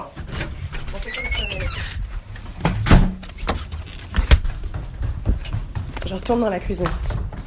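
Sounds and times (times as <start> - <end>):
clunk and rattle of a door being opened: 0.1 - 5.7
speech: 6.1 - 7.1.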